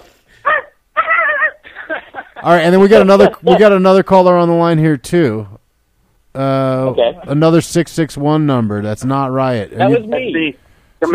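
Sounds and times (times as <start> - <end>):
caller on the phone imitating a dog barking: 0.4 - 1.7
laughter: 1.0 - 3.8
speech: 2.4 - 5.6, 6.4 - 11.1.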